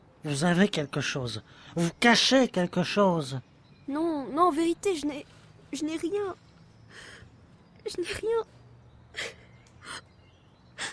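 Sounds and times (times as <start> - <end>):
speech: 0.2 - 6.4, 7.8 - 8.6, 9.2 - 10.0
woman crying and sniffling: 9.2 - 10.0.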